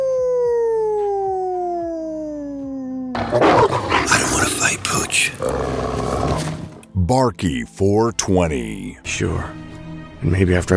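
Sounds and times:
wolf howling: 0:00.0 - 0:06.8
speech: 0:05.1 - 0:10.7.

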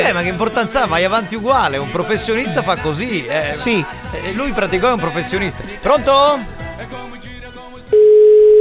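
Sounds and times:
speech: 0:00.1 - 0:06.9
telephone ringback tone on a call: 0:07.9 - 0:08.5.

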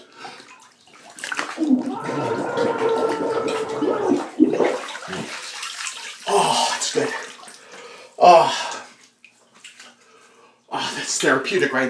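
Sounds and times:
splash as a head comes up from bathtub water: 0:01.0 - 0:07.6
bubbling and gurgling bathtub water: 0:01.3 - 0:07.2
speech: 0:01.6 - 0:03.4, 0:11.4 - 0:11.8
muffled scream with head underwater in a bathtub: 0:01.6 - 0:04.4
person sputtering: 0:01.6 - 0:05.3.

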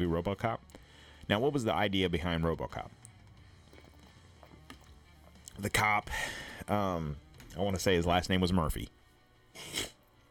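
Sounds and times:
speech: 0:00.0 - 0:03.0, 0:05.6 - 0:09.0
aborted sneeze attempt: 0:09.5 - 0:10.0.

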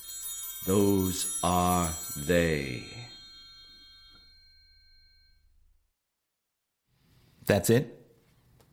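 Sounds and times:
hand bell ringing: 0:00.0 - 0:05.8
speech: 0:00.6 - 0:03.1, 0:07.5 - 0:08.0.

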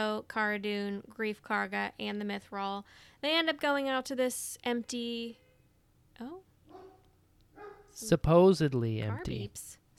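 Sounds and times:
speech: 0:00.0 - 0:05.4, 0:06.2 - 0:06.9, 0:08.0 - 0:09.8
quiet hum: 0:00.0 - 0:09.9
dog barking at home: 0:06.7 - 0:08.0.

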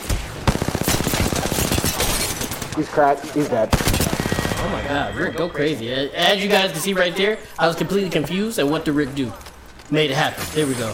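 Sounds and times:
rapid gunfire in a video game: 0:00.0 - 0:02.7, 0:03.7 - 0:04.7
speech: 0:02.8 - 0:10.9.

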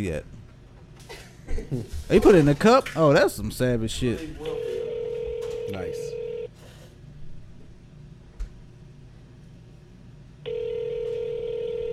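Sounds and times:
speech: 0:00.0 - 0:00.4, 0:01.0 - 0:04.8, 0:05.7 - 0:06.2
phone line ringing while waiting for an answer: 0:04.5 - 0:06.5, 0:10.4 - 0:11.9.

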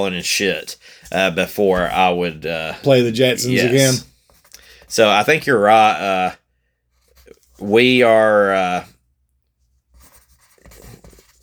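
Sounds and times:
speech: 0:00.0 - 0:04.1, 0:04.9 - 0:06.4, 0:07.6 - 0:08.9
pen nib scratching on paper writing handwritten notes: 0:10.0 - 0:11.4.

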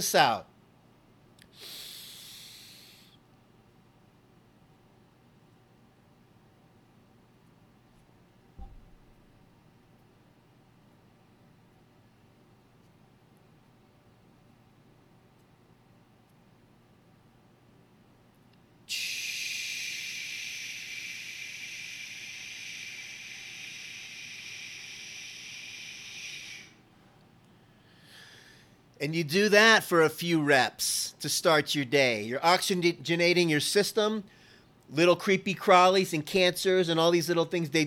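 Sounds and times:
speech: 0:00.0 - 0:00.5, 0:29.0 - 0:37.8
long hissing exhale in a deep breathing exercise: 0:01.5 - 0:03.2, 0:18.9 - 0:26.9, 0:27.8 - 0:28.7
person inhaling in a breathing exercise: 0:01.5 - 0:03.2, 0:18.9 - 0:26.9, 0:27.6 - 0:28.8, 0:34.3 - 0:34.8.

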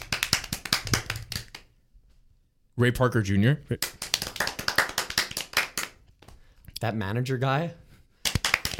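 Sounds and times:
hand clapping applause: 0:00.0 - 0:01.7, 0:03.8 - 0:06.4, 0:08.2 - 0:08.7
speech: 0:02.8 - 0:04.0, 0:06.8 - 0:07.8.

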